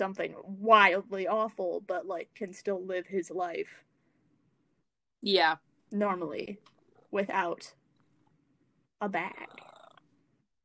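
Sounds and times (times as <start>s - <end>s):
speech: 0.0s - 3.9s, 5.2s - 7.8s, 9.0s - 9.6s
domestic cat purring: 9.2s - 10.1s.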